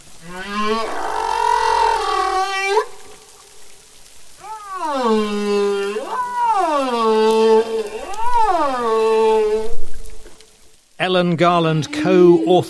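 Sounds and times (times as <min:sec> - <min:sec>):
humpback whale song: 0:00.1 - 0:03.4, 0:04.3 - 0:10.2
speech: 0:00.2 - 0:01.0, 0:11.1 - 0:12.6.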